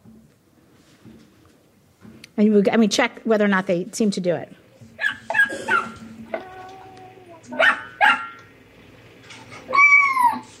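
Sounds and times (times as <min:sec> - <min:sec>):
speech: 0:02.4 - 0:04.6
puppy yips and barks: 0:05.0 - 0:06.0, 0:07.6 - 0:08.4, 0:09.7 - 0:10.5.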